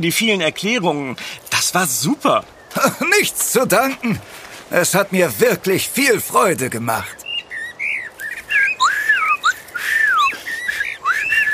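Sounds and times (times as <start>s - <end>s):
speech: 0.0s - 7.2s
bird warbling with whistled phrases: 7.0s - 11.5s.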